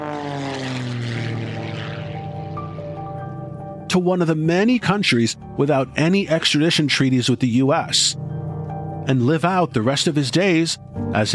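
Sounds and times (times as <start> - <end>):
propeller airplane engine roaring at full power for takeoff: 0.0 - 4.0
speech: 4.0 - 11.3.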